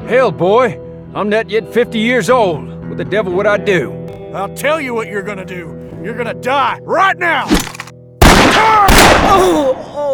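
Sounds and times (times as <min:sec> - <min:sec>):
speech: 0:00.1 - 0:07.7, 0:08.6 - 0:09.9
gun blasts in a close shootout: 0:07.5 - 0:09.9.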